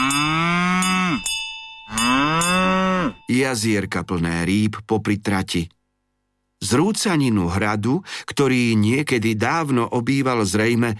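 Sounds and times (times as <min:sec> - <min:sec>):
cows mooing while grazing in mountain meadows: 0:00.0 - 0:01.3, 0:01.9 - 0:03.2
cowbell clinking: 0:00.0 - 0:03.9
speech: 0:03.3 - 0:05.8, 0:06.6 - 0:10.9.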